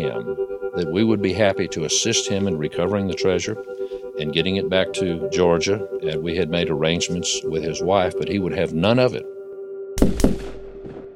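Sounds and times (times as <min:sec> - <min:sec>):
speech: 0:00.0 - 0:09.3
loud rifle shots with tail: 0:10.0 - 0:11.1.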